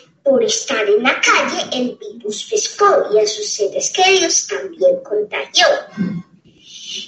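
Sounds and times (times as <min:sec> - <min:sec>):
speech: 0:00.4 - 0:06.3
sick person with fever coughing: 0:05.9 - 0:06.3.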